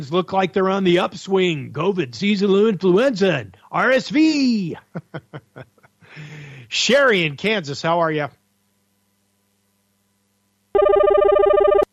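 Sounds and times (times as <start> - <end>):
speech: 0.0 - 8.4
laughter: 4.7 - 6.5
telephone ringing with electronic trill: 10.8 - 11.9.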